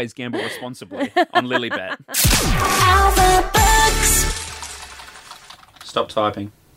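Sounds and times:
speech: 0.0 - 4.4, 6.0 - 6.6
laughter: 0.4 - 2.2
clicking of keys on a computer keyboard: 4.3 - 6.0.

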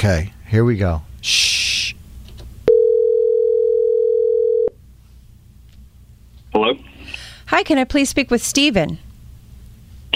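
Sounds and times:
speech: 0.0 - 1.5, 7.6 - 9.1
telephone dial tone while dialing a call: 2.7 - 4.7.

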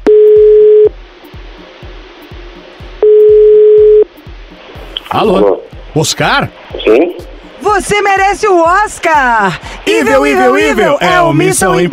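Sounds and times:
telephone ringback tone while a caller waits for an answer: 0.0 - 0.9, 3.0 - 4.1
speech: 5.1 - 11.9.

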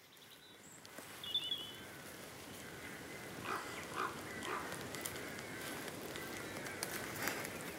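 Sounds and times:
faint bird calls: 0.0 - 7.7
soft rustle of open-air background: 0.0 - 7.7
dog's paws skittering outdoors: 3.5 - 7.7.

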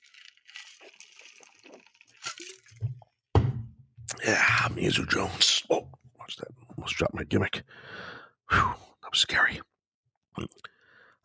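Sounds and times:
person drinking water with sloshing, slurps and gulps: 0.0 - 3.2
speech: 4.3 - 6.0, 6.8 - 9.7, 10.4 - 10.7.

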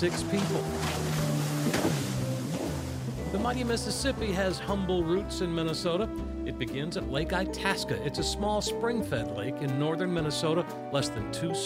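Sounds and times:
speech: 0.0 - 2.0, 3.3 - 11.6
recreational motorboat engine droning on the water in Minnesota: 0.1 - 3.8.

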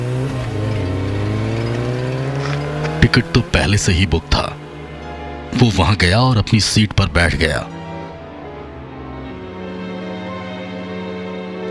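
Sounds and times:
motorbike engine starting and revving: 0.0 - 5.1
speech: 3.0 - 4.6, 5.6 - 7.7.

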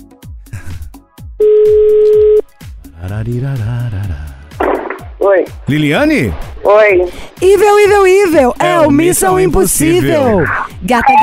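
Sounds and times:
steady electronic telephone call tone: 1.4 - 2.4
low rhythmic thumps: 2.2 - 11.2
speech: 3.2 - 4.4, 5.3 - 11.2.

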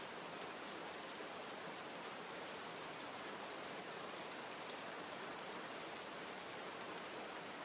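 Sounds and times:
swiftly flowing stream spilling over small waterfalls: 0.0 - 7.6.

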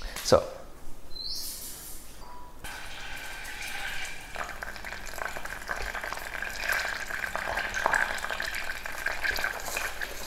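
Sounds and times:
butter bubbling as it melts and browns in a pan: 2.7 - 10.2.

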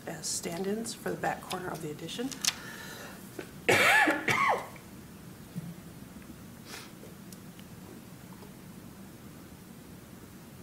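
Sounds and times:
speech: 0.2 - 2.7
harsh loud coughs: 3.7 - 4.8.

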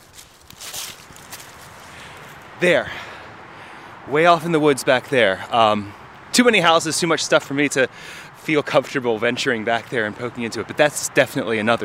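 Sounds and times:
footsteps crunching through woodland in a ravine: 0.0 - 3.1
speech: 2.6 - 3.1, 4.1 - 11.8.

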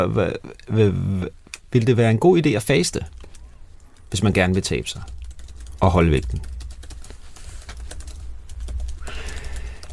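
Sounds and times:
speech: 0.0 - 3.2, 4.1 - 5.2, 5.8 - 6.5
low steady hum: 0.0 - 9.9
typing a question to an AI chatbot on a computer keyboard: 4.5 - 9.9.

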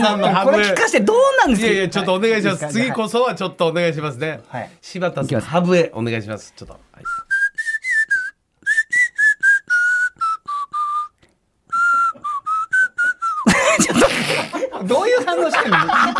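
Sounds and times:
speech: 0.0 - 7.2, 15.4 - 16.1
person whistling a bouncy pop tune: 7.0 - 13.6
laughter: 13.4 - 16.1.

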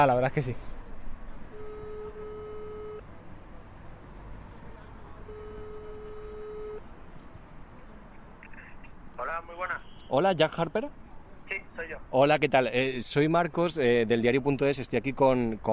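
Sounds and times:
speech: 0.0 - 0.8, 9.6 - 15.7
phone call ringing tone: 1.5 - 3.0, 5.2 - 6.8.

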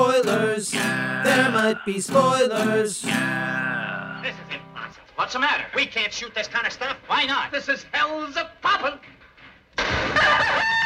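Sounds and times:
speech: 0.2 - 4.6, 5.2 - 9.2
rooster crowing: 10.2 - 10.8.

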